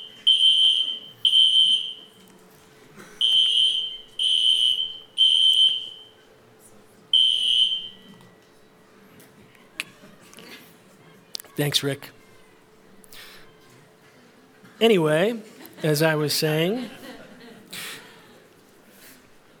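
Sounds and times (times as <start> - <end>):
fire alarm beeping: 0.0 - 2.2, 3.2 - 6.3, 7.1 - 8.3
laughter: 9.6 - 11.0, 15.4 - 19.5
speech: 11.6 - 12.2, 14.8 - 17.0.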